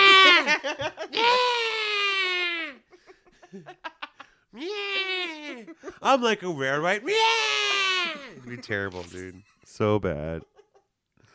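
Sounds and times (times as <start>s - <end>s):
voice imitating a crying infant with a high-pitched wail: 1.1s - 2.8s, 4.6s - 5.8s, 7.0s - 8.5s
speech: 6.0s - 7.4s, 8.5s - 10.5s.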